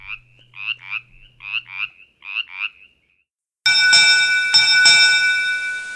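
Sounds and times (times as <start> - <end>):
Brimley's chorus frog calling with raspy pulsed croaks: 0.0 - 3.2
loud sustained ringing bell-like chime: 3.7 - 5.9.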